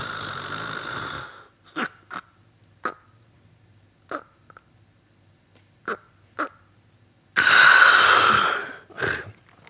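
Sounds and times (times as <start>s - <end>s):
person imitating snoring with breathing pauses: 0.0s - 1.9s, 7.4s - 9.3s.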